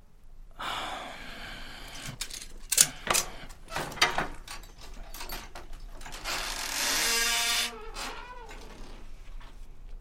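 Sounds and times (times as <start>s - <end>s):
large wooden storehouse door creaking open: 1.9s - 9.2s.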